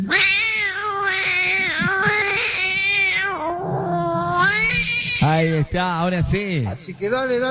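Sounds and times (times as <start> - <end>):
speech: 0.0 - 0.4, 5.4 - 7.4
cat yowling in a long wavering meow: 0.0 - 5.4.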